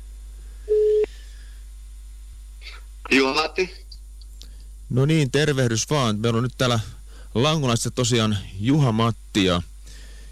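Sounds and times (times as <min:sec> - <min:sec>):
quiet telephone line hum: 0:00.0 - 0:10.3
telephone ringing tone of an outgoing call from a mobile phone: 0:00.7 - 0:01.1
speech: 0:03.1 - 0:03.8, 0:04.9 - 0:09.7.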